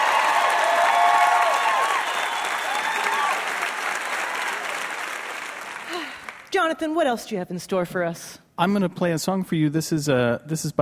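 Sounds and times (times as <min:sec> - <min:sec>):
audience whistles and cheers: 0:00.0 - 0:04.9
audience applause: 0:00.0 - 0:06.5
speech: 0:06.6 - 0:10.7.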